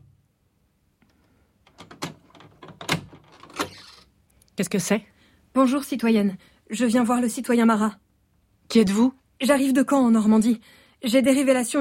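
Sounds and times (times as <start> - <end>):
door being opened on an upper floor of an 18th-century building: 1.7 - 4.1
speech: 4.6 - 8.0, 8.7 - 11.7.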